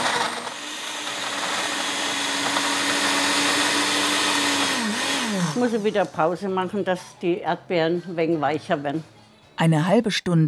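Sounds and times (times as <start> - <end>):
blender crushing ice, strawberries, sugar, vodka and lemon juice in a music pub in Würzburg: 0.0 - 6.1
speech: 5.6 - 10.4.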